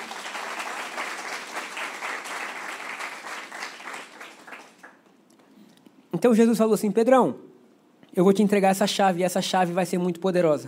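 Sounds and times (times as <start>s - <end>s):
audience applauding: 0.0s - 5.1s
speech: 6.1s - 7.5s, 8.2s - 10.6s.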